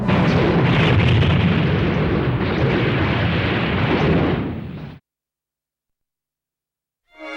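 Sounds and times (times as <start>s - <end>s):
space warship fleet opening fire in a barrage of heavy explosions: 0.0s - 5.0s.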